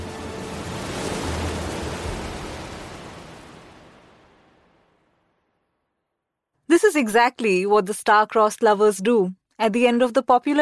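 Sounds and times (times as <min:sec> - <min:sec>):
Arabian Sea surf crashing on rocks: 0:00.0 - 0:04.7
speech: 0:06.8 - 0:10.6.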